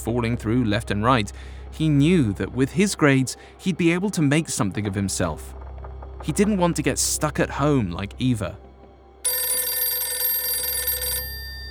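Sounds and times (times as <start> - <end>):
speech: 0.0 - 5.6, 6.2 - 8.6
telephone bell ringing: 9.2 - 11.7.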